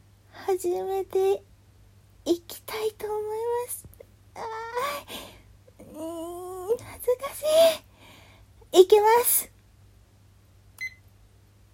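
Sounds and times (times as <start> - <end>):
quiet hum: 0.0 - 11.7
speech: 0.5 - 1.5, 2.2 - 7.9, 8.7 - 9.5
high-pitched electronic timer beep: 10.8 - 11.0.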